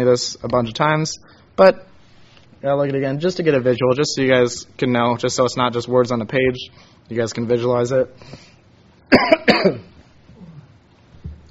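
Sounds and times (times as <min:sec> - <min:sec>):
speech: 0:00.0 - 0:01.9, 0:02.6 - 0:09.9
quiet breathing: 0:01.2 - 0:02.5, 0:06.7 - 0:07.1, 0:08.2 - 0:08.8
person coughing to clear something stuck in the throat: 0:09.1 - 0:10.7.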